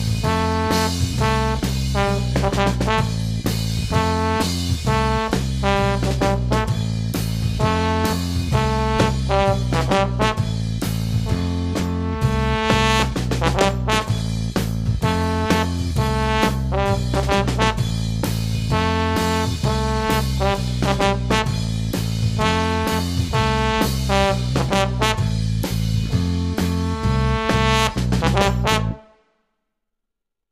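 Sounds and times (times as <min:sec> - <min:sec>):
trombone section playing: 0:00.2 - 0:14.4, 0:15.0 - 0:29.2.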